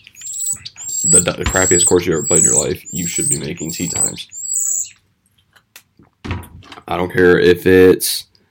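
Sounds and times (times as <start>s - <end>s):
birds chirping loudly outside: 0.0s - 5.0s
speech: 1.1s - 4.4s, 6.9s - 8.3s.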